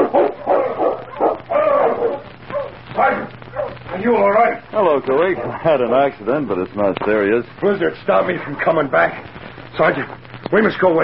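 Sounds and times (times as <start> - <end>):
sled dog team barking and yelping: 0.0 - 4.0, 5.4 - 5.8
speech: 4.1 - 11.0.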